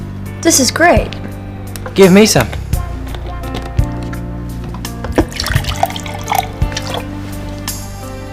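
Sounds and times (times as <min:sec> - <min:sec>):
speech: 0:00.5 - 0:01.2, 0:02.0 - 0:02.6
water drips: 0:05.1 - 0:07.1
collected rainwater from a roof being poured and splashing: 0:05.1 - 0:07.6.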